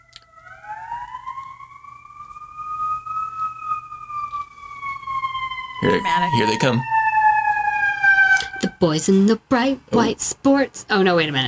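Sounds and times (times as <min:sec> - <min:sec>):
emergency vehicle siren wailing: 0:00.0 - 0:10.1
low rumble of road traffic: 0:02.2 - 0:11.4
speech: 0:05.8 - 0:07.0, 0:08.7 - 0:11.4.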